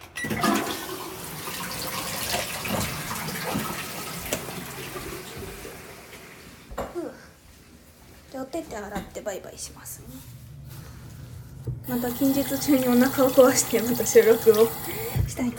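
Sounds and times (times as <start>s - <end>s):
toilet flushing: 0.0s - 6.7s, 11.8s - 15.5s
speech: 8.6s - 10.4s, 11.9s - 15.5s.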